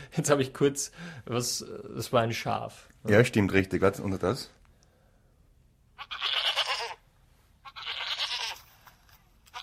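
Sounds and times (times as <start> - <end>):
speech: 0.2 - 4.6
goat bleating at a zoo: 6.0 - 7.0, 7.6 - 9.6.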